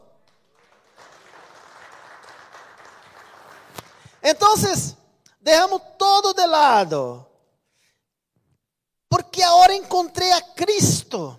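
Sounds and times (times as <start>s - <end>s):
audience applause: 0.2s - 4.2s
speech: 4.2s - 7.3s, 9.4s - 11.3s.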